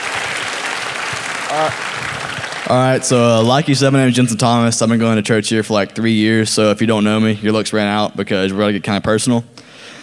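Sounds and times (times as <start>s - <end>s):
crowd applauding: 0.0s - 4.5s
person cheering: 1.4s - 3.3s
speech: 1.5s - 2.1s, 2.7s - 9.6s.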